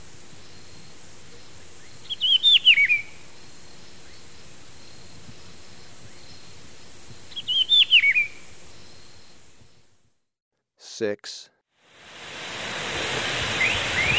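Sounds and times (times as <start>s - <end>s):
rufous-browed peppershrike warbled whistled song in Ecuador: 7.3s - 8.4s, 12.1s - 14.1s
speech: 11.0s - 11.5s.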